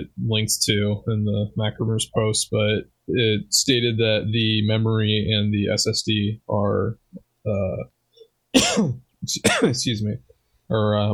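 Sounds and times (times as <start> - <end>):
speech: 0.1 - 11.1
person clearing throat because something feels stuck: 8.6 - 9.8.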